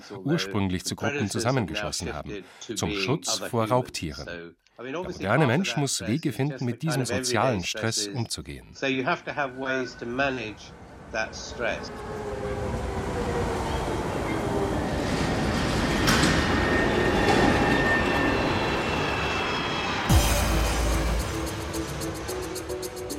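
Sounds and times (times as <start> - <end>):
speech: 0.0 - 13.3
subway train rumbling: 9.4 - 23.1.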